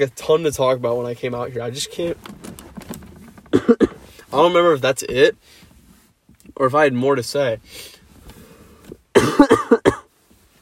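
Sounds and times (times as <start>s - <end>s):
speech: 0.0s - 2.4s, 3.7s - 5.6s, 6.6s - 8.0s
person coughing harshly and chestily: 3.5s - 4.1s, 9.2s - 10.1s.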